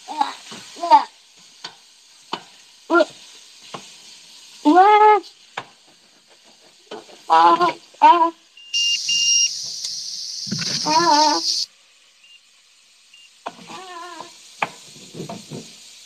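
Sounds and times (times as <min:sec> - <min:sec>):
meat sizzling as it fries in oil: 0:00.0 - 0:16.0
speech: 0:07.3 - 0:08.4
short high voiced cat-like cries: 0:13.6 - 0:14.4.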